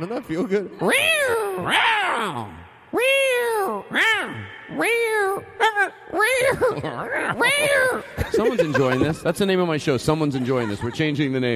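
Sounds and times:
speech: 0.0 - 11.5
human voice imitating cat meows with echo effect: 0.8 - 8.2
laughter: 6.2 - 11.5.

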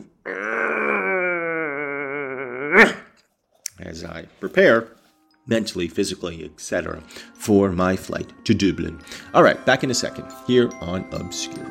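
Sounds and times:
person yawning while stretching: 0.0 - 3.2
speech: 4.0 - 11.6.

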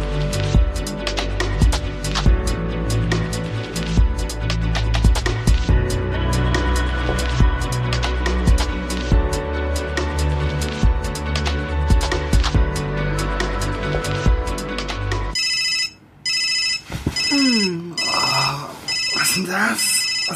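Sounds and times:
dense musical backdrop: 0.0 - 15.4
loud electronic mobile phone ringtone: 15.3 - 20.3.

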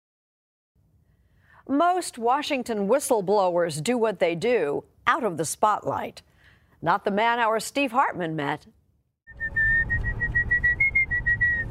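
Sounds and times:
speech: 1.6 - 8.8
person whistling a bright melody: 9.3 - 11.6.

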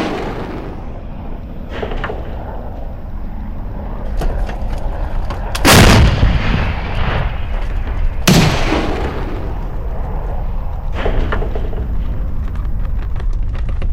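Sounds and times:
heavy explosions around a village near Kyiv next to a military base: 0.0 - 3.0, 5.6 - 13.5
constant low rumble: 0.0 - 13.9.

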